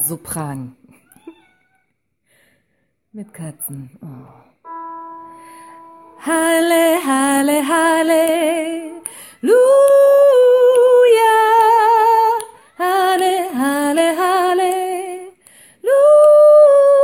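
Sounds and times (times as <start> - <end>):
soprano singing: 4.7 - 17.0.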